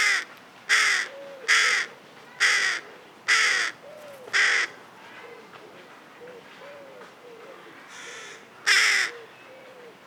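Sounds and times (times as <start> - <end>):
carrion crow Corvus corone cawing: 0.0 - 4.7, 7.9 - 9.2.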